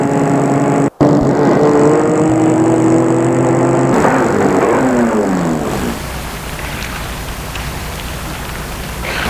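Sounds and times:
car engine humming and winding down as the car stops: 0:00.0 - 0:09.2
steady rain-like noise: 0:03.9 - 0:09.2.

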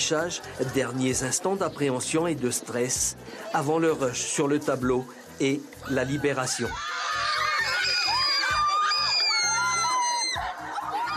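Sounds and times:
speech: 0:00.1 - 0:07.1
crowd screaming and shrieking with joy at exam results: 0:05.8 - 0:11.1
people laughing and whooping: 0:05.8 - 0:11.1.

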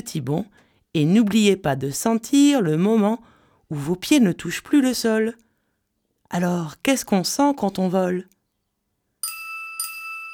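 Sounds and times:
speech: 0:00.0 - 0:05.4, 0:06.3 - 0:08.4
bell ringing: 0:09.2 - 0:10.3.

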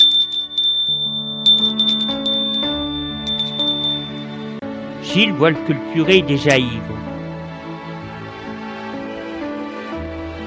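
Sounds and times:
doorbell chiming at a presbytery door: 0:00.0 - 0:04.6
high ringing overtone: 0:00.0 - 0:04.6
speech: 0:05.2 - 0:07.1.

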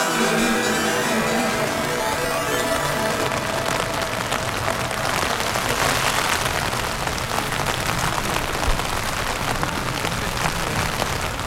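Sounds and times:
heavy rain drumming on a tent: 0:00.2 - 0:11.4.

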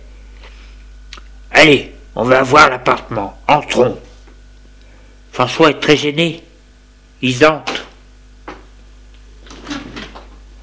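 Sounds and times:
low steady hum: 0:00.0 - 0:10.6
speech: 0:01.6 - 0:04.0, 0:05.4 - 0:06.5, 0:07.2 - 0:07.8
apartment door closing: 0:09.4 - 0:10.4.

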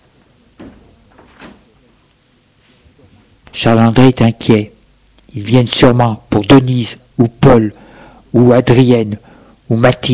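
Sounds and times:
door being pulled shut: 0:00.6 - 0:01.7
speech: 0:03.6 - 0:04.7, 0:05.3 - 0:10.1.

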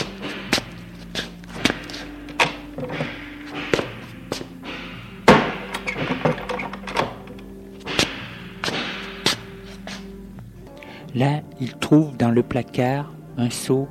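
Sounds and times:
door slamming shut: 0:00.0 - 0:10.0
light thumps and knocks: 0:00.0 - 0:10.0
low steady hum: 0:00.0 - 0:13.8
speech: 0:11.2 - 0:13.8.

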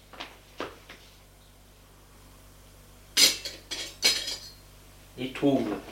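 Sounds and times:
cutlery set down clattering on a table: 0:03.2 - 0:04.6
speech: 0:05.2 - 0:05.9.

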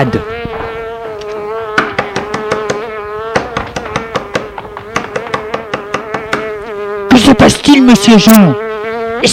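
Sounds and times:
speech: 0:00.0 - 0:00.4, 0:07.4 - 0:09.3
housefly buzzing: 0:00.0 - 0:09.3
sharp regular taps: 0:01.2 - 0:06.6.

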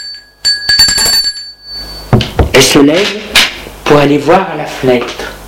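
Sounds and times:
metallic doorbell ringing at the gate: 0:00.0 - 0:02.2
speech: 0:02.6 - 0:05.2.

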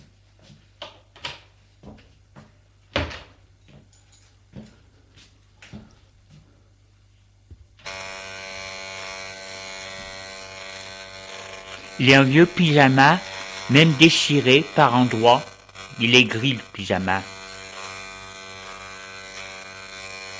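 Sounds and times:
electric shaver buzzing as a man shaves in a shower room: 0:07.8 - 0:20.3
speech: 0:12.0 - 0:17.3.

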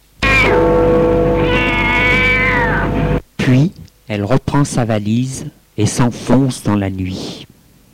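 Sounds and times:
cat meowing outdoors in front of a house at night: 0:00.2 - 0:00.7, 0:01.3 - 0:03.0
speech: 0:03.5 - 0:07.4.

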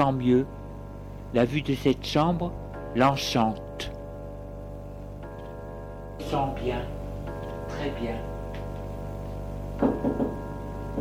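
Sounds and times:
speech: 0:00.0 - 0:00.6, 0:01.3 - 0:03.9, 0:06.2 - 0:07.0, 0:07.7 - 0:08.3, 0:09.8 - 0:10.4
steady low hum: 0:00.0 - 0:10.9
soft dull knocking on a door: 0:09.8 - 0:10.9.

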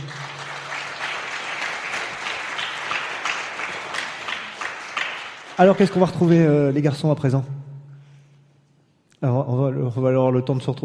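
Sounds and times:
crowd applauding young people: 0:00.0 - 0:06.8
speech: 0:05.6 - 0:07.6, 0:09.2 - 0:10.8.

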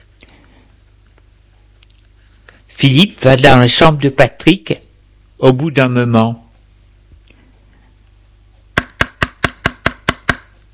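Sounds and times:
speech: 0:02.8 - 0:04.8, 0:05.4 - 0:06.4
knocking on a door: 0:08.8 - 0:10.5.

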